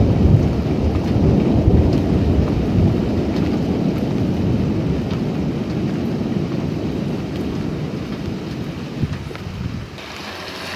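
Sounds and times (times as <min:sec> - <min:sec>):
deep rolling thunder after a lightning strike: 0:00.0 - 0:10.0
rain hiss: 0:00.0 - 0:10.7.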